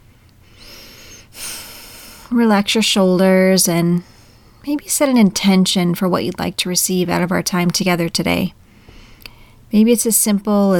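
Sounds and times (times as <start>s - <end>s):
deep breath: 0.4s - 2.3s, 8.6s - 9.6s
speech: 2.3s - 8.6s, 9.7s - 10.7s.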